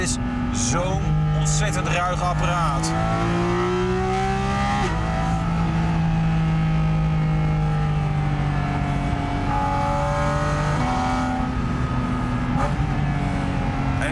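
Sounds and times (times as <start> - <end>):
speech: 0.0 - 4.0
naturally aspirated sports car engine revving and shifting up through gears: 0.0 - 14.1.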